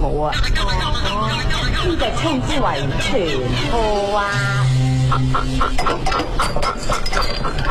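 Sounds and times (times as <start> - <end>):
low hum: 0.0 - 7.6
speech: 0.1 - 7.6
squeezed toy frog croaking in squawky bursts: 0.4 - 6.5.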